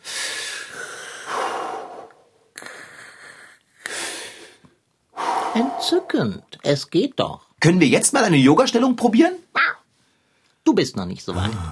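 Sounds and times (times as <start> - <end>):
person breathing deeply during relaxation exercise: 0.0 - 6.4
speech: 5.6 - 9.4, 10.8 - 11.7.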